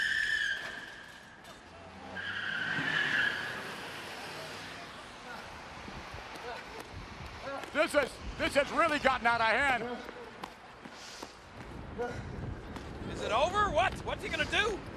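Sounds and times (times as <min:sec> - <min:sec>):
car tires skidding and squealing: 0:00.0 - 0:05.0
speech: 0:07.8 - 0:10.2, 0:12.0 - 0:12.3, 0:13.2 - 0:14.9.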